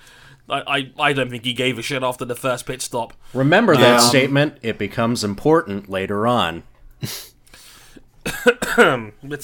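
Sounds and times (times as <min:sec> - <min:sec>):
speech: 0:00.5 - 0:07.3, 0:08.2 - 0:09.4
cough: 0:08.2 - 0:09.1.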